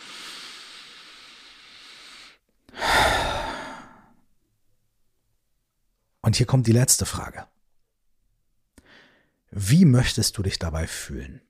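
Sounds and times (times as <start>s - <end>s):
deep breath in and out close to the microphone: 0.0s - 4.2s, 8.8s - 9.5s
speech: 6.3s - 7.6s, 9.5s - 11.4s.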